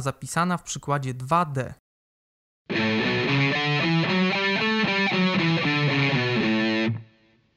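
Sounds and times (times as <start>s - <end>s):
speech: 0.0s - 1.8s
Mixolydian scale over A7 chord on distorted electric tone: 2.7s - 7.1s.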